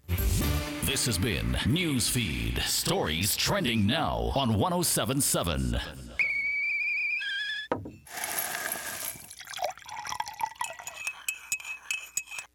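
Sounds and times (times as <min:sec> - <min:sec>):
speech: 0:00.9 - 0:06.2
steady whistling tone while coffee is prepared: 0:06.2 - 0:07.7
glassy clinks: 0:07.7 - 0:12.5
liquid dripping while coffee is prepared: 0:09.2 - 0:11.5.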